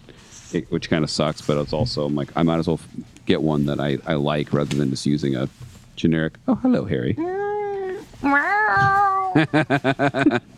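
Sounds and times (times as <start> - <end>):
speech: 0.5 - 7.4, 8.2 - 10.5
cat meowing loudly at a microphone: 7.2 - 9.4
cat making short rhythmic chirping complaints: 8.2 - 9.4
laughter: 9.2 - 10.5.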